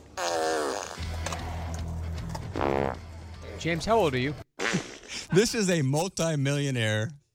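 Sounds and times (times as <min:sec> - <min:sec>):
fart: 0:00.2 - 0:01.2, 0:02.5 - 0:03.0, 0:04.6 - 0:05.2
speech: 0:03.6 - 0:07.2.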